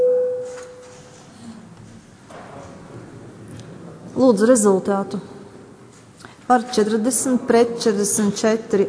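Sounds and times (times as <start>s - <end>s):
parliament voting bell electronic signal tone: 0.0s - 0.9s
speech: 4.2s - 5.4s, 6.5s - 8.8s.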